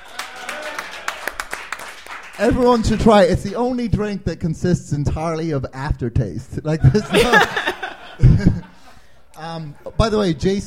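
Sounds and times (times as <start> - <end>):
scattered applause from a small audience: 0.0 - 3.6
speech: 2.4 - 7.7, 9.5 - 10.6
laughter: 6.8 - 10.4.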